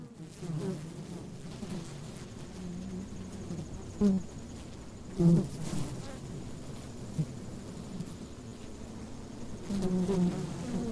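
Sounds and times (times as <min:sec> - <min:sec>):
honeybees buzzing inside a honey super: 0:00.0 - 0:10.8.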